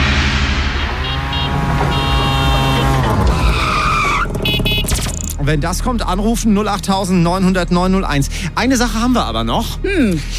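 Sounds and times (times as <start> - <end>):
tuk-tuk driving with a loud motor whine: 0.8 - 5.4
speech: 5.5 - 10.3.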